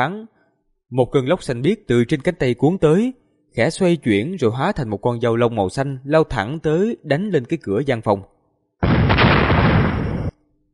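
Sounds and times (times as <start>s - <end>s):
speech: 0.0s - 9.0s
series of explosions: 8.8s - 10.5s.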